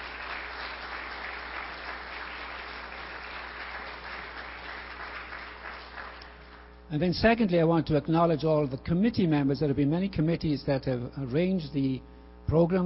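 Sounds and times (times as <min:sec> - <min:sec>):
sizable crowd applauding: 0:00.0 - 0:06.7
speech: 0:06.9 - 0:12.8.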